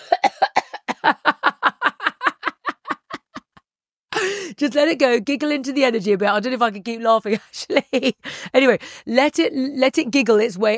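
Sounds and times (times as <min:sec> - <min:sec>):
person coughing forcefully: 0:00.0 - 0:01.1
laughter: 0:00.9 - 0:03.6
speech: 0:04.6 - 0:10.7.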